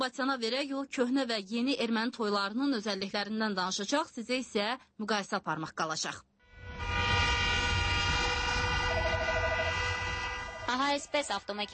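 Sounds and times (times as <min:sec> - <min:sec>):
speech: 0:00.0 - 0:06.3, 0:10.7 - 0:11.7
car horns honking to celebrate a wedding: 0:06.8 - 0:10.7.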